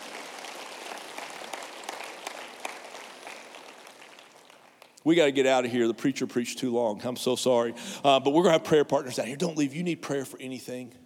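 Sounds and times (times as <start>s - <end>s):
crowd applauding: 0.0s - 5.0s
speech: 5.0s - 11.0s.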